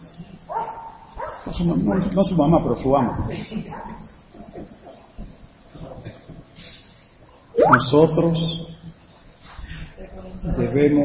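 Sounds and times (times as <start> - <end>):
dog barking with high yelping bark: 0.5 - 1.5
speech: 1.5 - 4.0, 7.7 - 8.7, 10.5 - 11.0.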